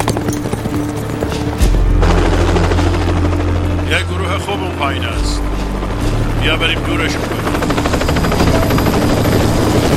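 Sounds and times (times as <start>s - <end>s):
rhythmic hoofbeats of horses being ridden: 0.0s - 3.6s
loud low helicopter drone overhead: 0.0s - 9.9s
speech: 6.5s - 7.5s.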